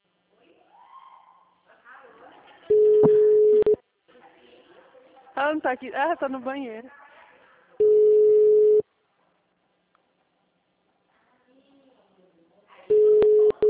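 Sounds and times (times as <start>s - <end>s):
telephone ringback tone of an unanswered call: 2.7s - 3.8s, 7.8s - 8.8s, 12.9s - 13.6s
speech: 5.5s - 7.0s.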